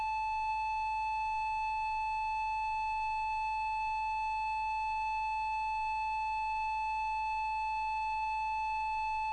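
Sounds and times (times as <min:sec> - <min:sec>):
siren: 0:00.1 - 0:09.3.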